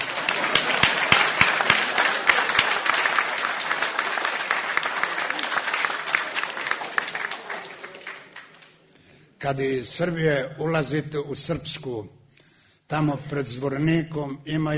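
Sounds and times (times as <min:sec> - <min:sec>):
audience applause: 0:00.0 - 0:08.8
speech: 0:09.4 - 0:12.2, 0:12.9 - 0:14.7.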